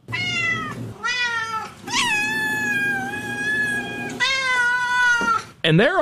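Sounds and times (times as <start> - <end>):
cats meowing: 0.0 - 5.5
speech: 5.6 - 5.9.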